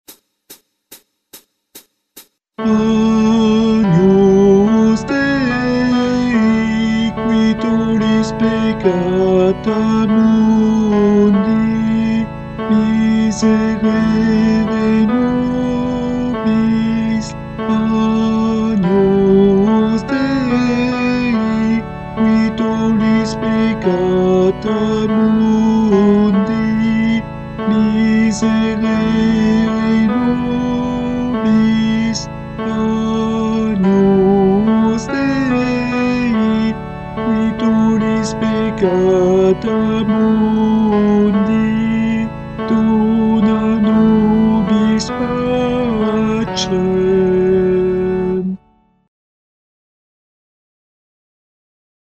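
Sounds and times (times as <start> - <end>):
tenor singing a chant: 2.6 - 48.6.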